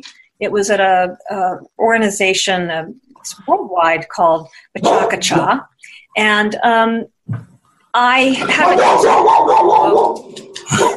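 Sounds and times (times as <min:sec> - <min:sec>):
speech: 0:00.0 - 0:10.8
dogs barking and growling: 0:04.8 - 0:05.6, 0:08.4 - 0:10.9.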